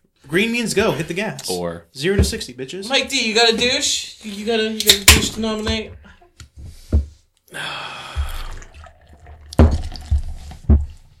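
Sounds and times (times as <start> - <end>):
speech: 0.3 - 6.1
foamy drink being poured into a glass: 8.3 - 10.5.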